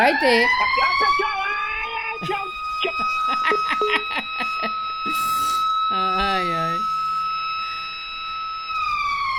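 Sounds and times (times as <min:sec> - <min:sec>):
speech: 0:00.0 - 0:01.4, 0:02.2 - 0:06.9
electronic siren sound effect played on air: 0:00.0 - 0:09.3
laughter: 0:00.5 - 0:01.6, 0:02.2 - 0:05.3
person crying out over the siren: 0:05.1 - 0:05.6.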